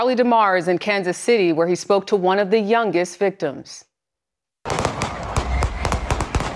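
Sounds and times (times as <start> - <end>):
speech: 0.0 - 3.9
gunfire at a crowded Super Bowl celebration in Kansas City: 4.7 - 6.5
dense loud crowd noise at a Super Bowl celebration: 4.8 - 6.5.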